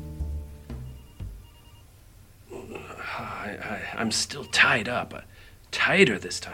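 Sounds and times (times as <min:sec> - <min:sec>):
cell phone ringtone with bright electronic tones: 0:00.8 - 0:01.9, 0:04.0 - 0:04.8
speech: 0:03.2 - 0:06.5.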